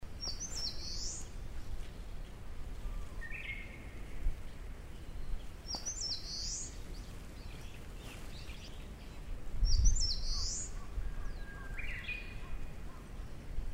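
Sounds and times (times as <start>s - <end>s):
eastern crowned warbler: 0.1s - 13.6s.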